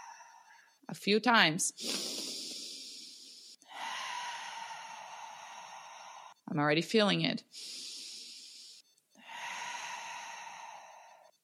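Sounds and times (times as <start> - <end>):
speech: 0.9 - 2.1, 6.6 - 7.8
deep inhale through the nose: 1.8 - 6.4, 7.5 - 11.4.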